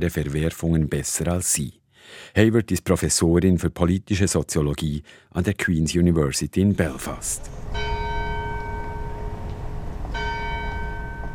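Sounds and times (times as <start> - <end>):
speech: 0.0 - 7.8
low rumble of outdoor city noise in Belfast city centre: 6.7 - 11.3
large bell in the tall tower of a brick building in Belfast: 7.4 - 11.3.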